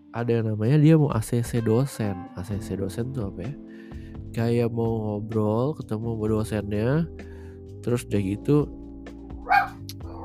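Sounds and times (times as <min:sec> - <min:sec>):
speech: 0:00.1 - 0:08.8
dog barking: 0:09.4 - 0:10.2.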